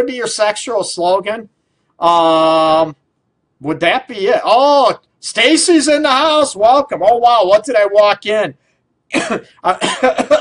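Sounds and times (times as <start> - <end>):
speech: 0.0 - 3.0, 3.6 - 10.3
person coughing: 9.1 - 10.3
rough throat-clearing hacks: 9.1 - 10.3.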